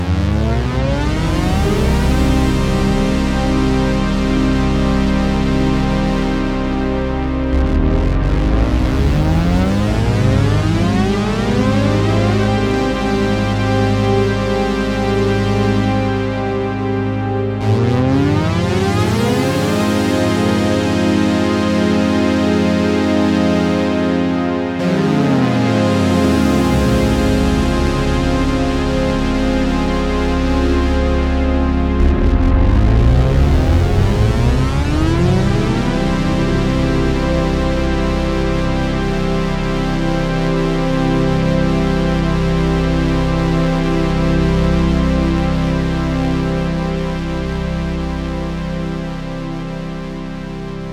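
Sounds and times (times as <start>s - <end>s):
JupiterX medium portamento glide: 0.0s - 50.9s.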